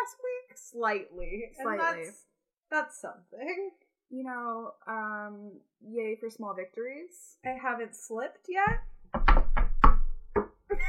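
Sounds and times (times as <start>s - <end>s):
speech: 0.1s - 8.9s
hollow knocking on a wooden surface: 8.7s - 10.3s.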